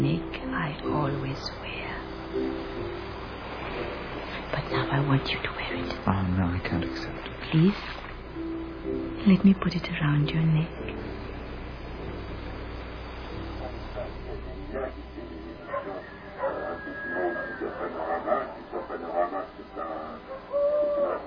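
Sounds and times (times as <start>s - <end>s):
low steady rumble: 0.0s - 16.5s
speech: 4.7s - 8.0s, 9.1s - 11.0s
indistinct murmuring voices: 13.6s - 21.2s
owl hooting: 15.6s - 21.2s.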